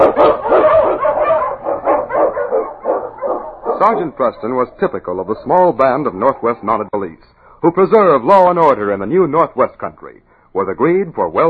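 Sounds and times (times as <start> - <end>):
husky sled dog, Eskimo lead dog, barking and yipping: 0.0 - 6.9
speech: 3.8 - 7.0, 7.6 - 11.4.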